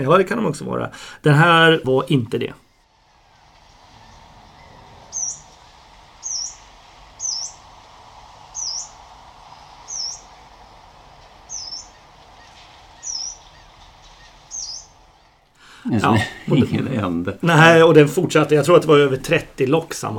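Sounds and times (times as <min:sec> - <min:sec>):
speech: 0:00.0 - 0:02.6, 0:16.0 - 0:20.1
faint steady outdoor background: 0:00.0 - 0:20.1
yellow-browed warbler calling in a lighthouse garden in autumn: 0:02.6 - 0:16.9
laughter: 0:15.9 - 0:17.4.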